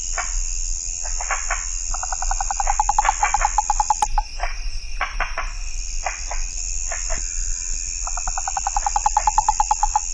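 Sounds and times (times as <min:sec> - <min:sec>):
shrill insect hum: 0:00.0 - 0:10.1
Rana psaltes frog pulsed trills: 0:01.8 - 0:04.5, 0:06.4 - 0:10.1
sharp ticks: 0:01.9 - 0:04.3, 0:08.0 - 0:10.1.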